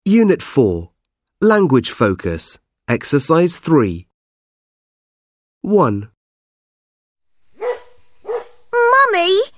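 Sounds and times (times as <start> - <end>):
speech: 0.0 - 4.1, 5.6 - 6.1, 9.2 - 9.5
dog giving a sharp bark: 7.6 - 8.6.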